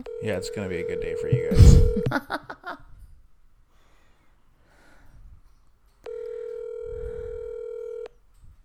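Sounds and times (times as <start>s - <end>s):
outgoing phone call ringback tone ringing unanswered: 0.0s - 2.1s, 6.1s - 8.1s
speech: 0.0s - 2.9s.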